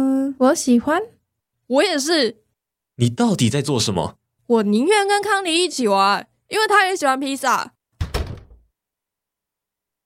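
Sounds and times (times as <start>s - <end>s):
speech: 0.4s - 2.4s, 3.0s - 7.8s
door shutting with a dull wooden thunk: 8.0s - 8.7s.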